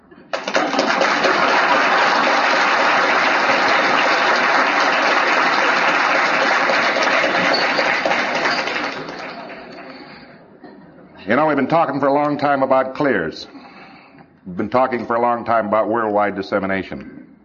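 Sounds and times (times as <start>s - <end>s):
large congress audience applause: 0.3s - 10.3s
speech: 11.3s - 13.6s, 14.4s - 17.2s.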